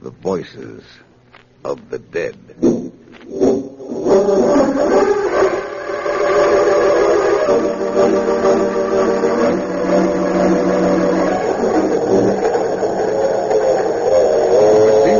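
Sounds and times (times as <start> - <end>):
speech: 0.0 - 5.2, 7.5 - 8.5
droning whistle-like tones from express train: 4.2 - 15.1
express train speeding along the rails at night: 4.7 - 15.1.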